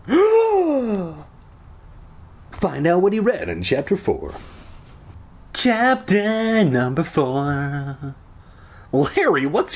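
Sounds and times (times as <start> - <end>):
person gasping in surprise: 0.0 - 1.3, 8.4 - 8.9
speech: 2.6 - 4.6, 5.6 - 8.2, 8.9 - 9.7.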